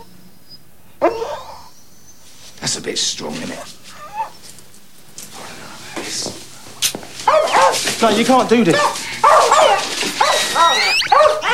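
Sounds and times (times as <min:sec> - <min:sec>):
dog making high squeaky whines and short yelping barks: 0:00.0 - 0:02.3, 0:03.9 - 0:04.5, 0:07.2 - 0:07.8, 0:08.7 - 0:11.5
speech: 0:02.6 - 0:04.0, 0:08.0 - 0:09.4.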